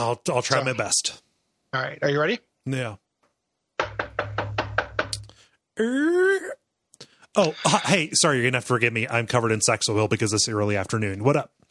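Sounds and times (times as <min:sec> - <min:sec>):
speech: 0:00.0 - 0:03.0, 0:05.8 - 0:06.6, 0:07.4 - 0:11.6
knocking on a house door: 0:03.8 - 0:05.2
person making a drawn-out vocal sound: 0:05.8 - 0:06.7.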